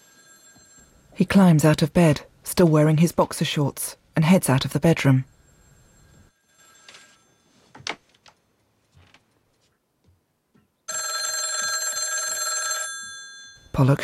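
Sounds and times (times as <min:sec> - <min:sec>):
telephone bell ringing: 0:00.0 - 0:01.8, 0:05.0 - 0:07.8, 0:10.9 - 0:14.0
speech: 0:01.2 - 0:05.3, 0:13.8 - 0:14.0.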